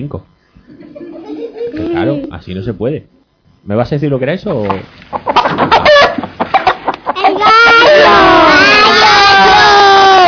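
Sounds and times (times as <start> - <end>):
speech: 0.0 - 0.4, 1.7 - 5.2
hen clucking: 4.5 - 7.8
hen squawking cackle: 5.2 - 9.3.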